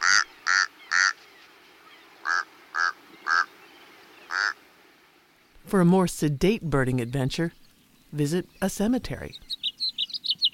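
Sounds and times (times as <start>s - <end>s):
Tamaulipas crow giving nasal croaking calls: 0.0s - 1.2s, 2.2s - 3.6s, 4.2s - 4.6s
speech: 5.7s - 9.4s.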